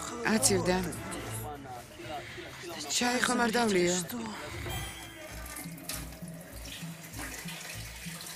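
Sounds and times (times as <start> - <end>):
speech: 0.2 - 1.1, 3.0 - 4.5
water running from a tap: 5.2 - 8.3.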